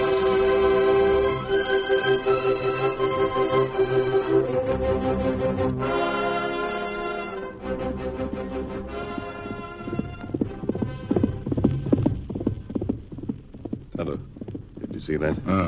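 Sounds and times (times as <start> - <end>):
sustained orchestral music: 0.0 - 11.6
hoofbeats of a horse ridden hard at a gallop: 0.0 - 15.6
speech: 15.1 - 15.6.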